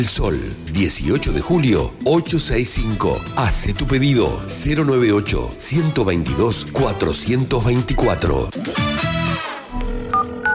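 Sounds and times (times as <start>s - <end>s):
speech: 0.0s - 9.1s
brief electronic tone: 8.7s - 10.5s
telephone keypad tones: 10.1s - 10.5s.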